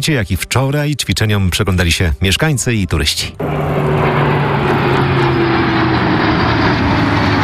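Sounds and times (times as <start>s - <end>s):
speech: 0.0s - 4.2s
military fighter jets flying overhead with loud engine roar: 3.4s - 7.4s.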